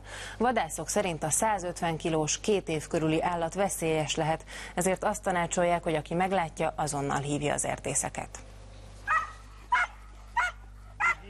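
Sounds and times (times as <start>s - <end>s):
low constant hum: 0.0s - 11.2s
speech: 0.4s - 8.5s
hunting dog barking in forest: 9.1s - 11.2s.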